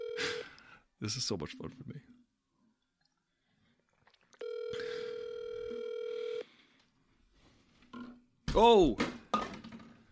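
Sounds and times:
telephone electronic ringtone: 0.0s - 0.4s, 4.4s - 6.4s
speech: 1.0s - 2.2s, 8.6s - 9.2s.

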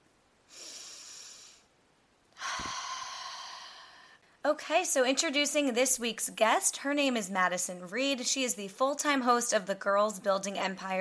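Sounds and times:
person breathing in and out during a guided breathing exercise: 0.5s - 1.7s, 2.4s - 4.4s
speech: 4.4s - 10.9s.

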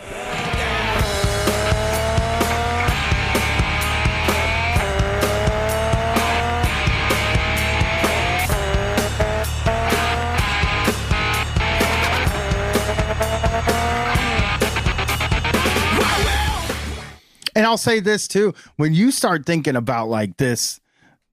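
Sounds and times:
car engine rev sound effect scratched by a DJ: 0.0s - 17.2s
nu metal song with pounding beat: 0.0s - 17.2s
speech: 17.7s - 20.8s.

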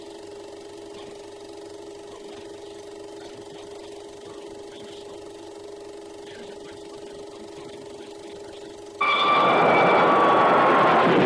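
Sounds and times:
train engine roaring: 9.0s - 11.2s.

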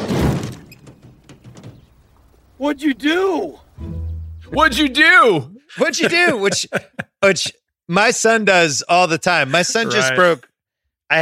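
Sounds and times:
car door falling off: 0.0s - 1.9s
speech: 2.6s - 10.5s
laughter: 4.6s - 7.6s, 9.4s - 10.3s.

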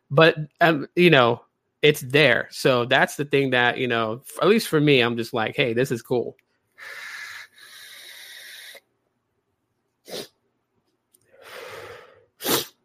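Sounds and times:
speech: 0.1s - 7.1s
breathy inhale before sneezing: 6.8s - 8.8s, 11.3s - 12.4s
person with a cold sneezing: 10.1s - 10.4s, 12.4s - 12.8s.

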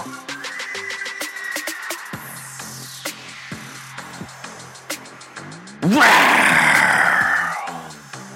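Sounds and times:
man bellowing a raspy growling roar imitating a tiger: 5.8s - 7.9s.

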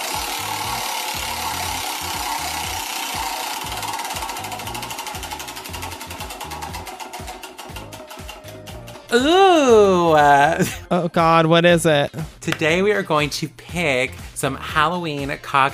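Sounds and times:
Halloween treat prize wheel spinning with rattling ticks: 0.0s - 10.4s
speech: 9.1s - 15.7s.

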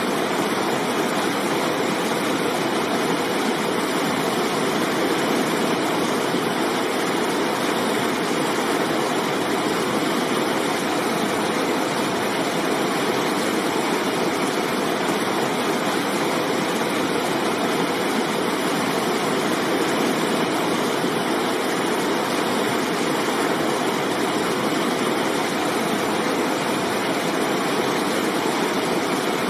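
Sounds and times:
river flowing: 0.0s - 29.4s.

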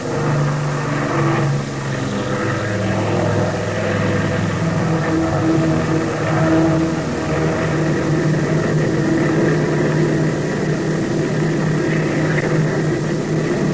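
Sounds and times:
airplane engines roaring during takeoff: 0.0s - 13.7s.

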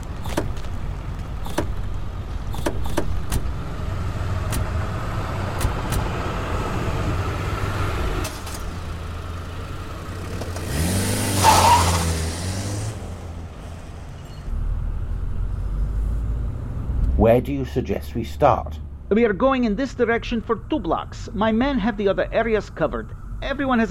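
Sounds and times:
car engine idling and revving as car pulls away: 0.2s - 20.1s
car doors shutting: 1.4s - 3.6s, 4.4s - 4.8s, 5.5s - 6.2s
speech: 17.3s - 23.8s.

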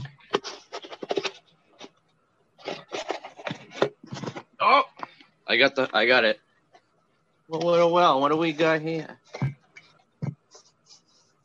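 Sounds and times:
packaging scraping and rustling as a mug is tugged out of a box: 0.2s - 1.9s, 2.6s - 4.5s
speech: 4.6s - 4.9s, 5.5s - 6.4s, 7.5s - 9.3s.

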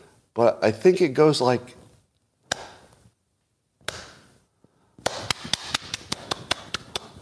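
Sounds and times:
speech: 0.4s - 1.8s
person giving a slow clap: 5.0s - 7.2s.

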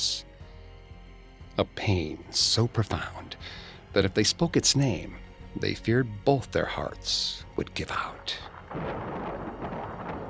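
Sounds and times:
speech: 1.6s - 9.2s
low rumbling thunder: 8.4s - 10.2s
rain: 8.4s - 10.2s
dense wind: 8.6s - 10.2s.

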